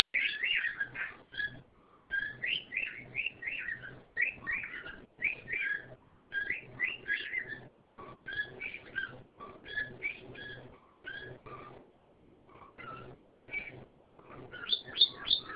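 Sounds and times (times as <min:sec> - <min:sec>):
bird twittering and warbling: 0:00.0 - 0:15.5.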